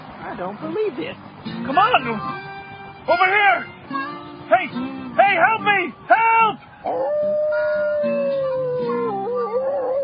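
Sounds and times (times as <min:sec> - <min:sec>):
speech: 0:00.3 - 0:02.5, 0:03.1 - 0:08.6
coyotes howling: 0:06.8 - 0:10.0.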